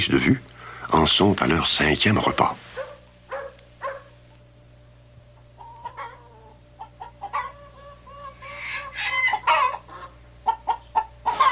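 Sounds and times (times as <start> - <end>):
speech: 0.0 - 2.7
low steady hum: 0.0 - 11.4
hens clucking: 5.4 - 11.4.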